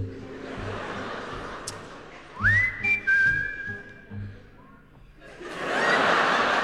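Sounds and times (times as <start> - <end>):
audience laughing: 0.0 - 3.0, 5.1 - 6.6
audience whistling along to a song: 2.4 - 4.3.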